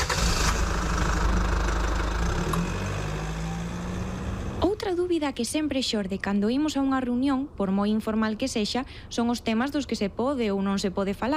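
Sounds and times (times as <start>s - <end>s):
car engine turning over and idling: 0.0s - 4.8s
speech: 4.9s - 11.3s.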